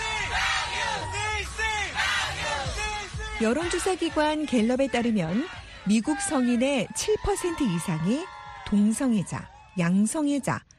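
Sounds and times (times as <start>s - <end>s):
large parade crowd chanting slogans in rhythmic unison: 0.0s - 6.2s
speech: 3.4s - 10.7s.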